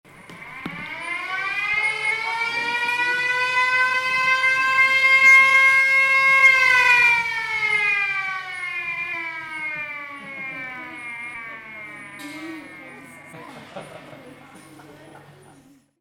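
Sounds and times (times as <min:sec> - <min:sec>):
siren installation in a museum: 0:00.1 - 0:14.6
engines of a siren installation: 0:00.1 - 0:15.6
laughter: 0:10.1 - 0:11.3, 0:12.2 - 0:15.8.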